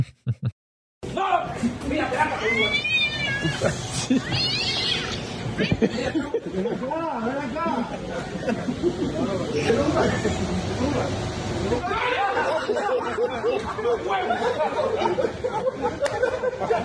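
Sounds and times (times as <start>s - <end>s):
crowd chatter and indistinct voices: 1.1s - 16.8s
cat meowing: 2.4s - 3.6s, 4.2s - 5.2s
laughter: 3.4s - 16.8s.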